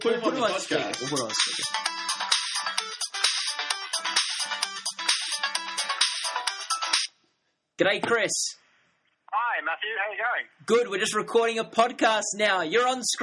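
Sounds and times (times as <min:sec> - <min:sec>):
speech: 0:00.0 - 0:01.9, 0:07.8 - 0:08.6, 0:09.6 - 0:13.2
bright electronic phone ringtone: 0:01.0 - 0:07.1.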